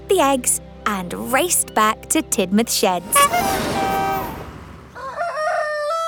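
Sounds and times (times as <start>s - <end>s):
speech: 0.1s - 3.9s
rooster crowing loudly: 4.8s - 6.0s.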